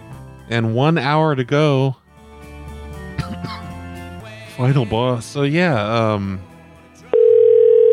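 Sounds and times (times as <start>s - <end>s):
speech: 0.5s - 2.0s, 4.6s - 6.5s
telephone dial tone: 7.2s - 7.9s.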